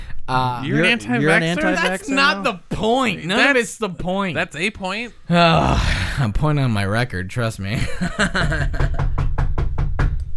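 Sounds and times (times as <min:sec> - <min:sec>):
speech: 0:00.3 - 0:09.2
laughter: 0:00.7 - 0:02.5, 0:07.7 - 0:09.0
knocking on an apartment door: 0:08.2 - 0:10.3.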